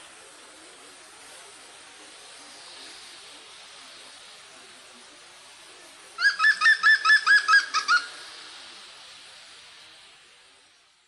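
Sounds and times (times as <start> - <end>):
quiet background hiss: 0.0 - 11.0
European green woodpecker yelping call: 6.2 - 8.2.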